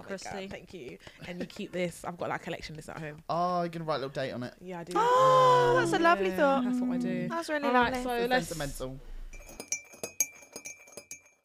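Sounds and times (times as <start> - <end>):
speech: 0.1 - 9.1
glasses clinking in a toast: 9.3 - 11.4.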